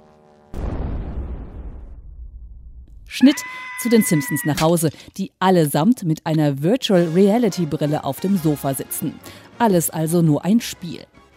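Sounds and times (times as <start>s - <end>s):
cartoon airplane catching fire and crashing in an animated virtual-reality game: 0.5s - 2.8s
speech: 3.1s - 11.2s.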